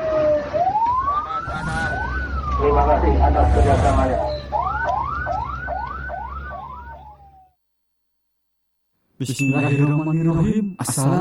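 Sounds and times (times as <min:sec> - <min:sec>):
ambulance siren wailing: 0:00.0 - 0:07.6
speech: 0:02.7 - 0:04.3, 0:09.2 - 0:11.1.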